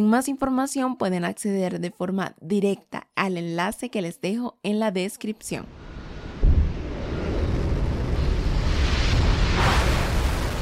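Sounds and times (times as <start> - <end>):
speech: 0.0 - 5.9
rockets roaring at liftoff: 5.7 - 10.6.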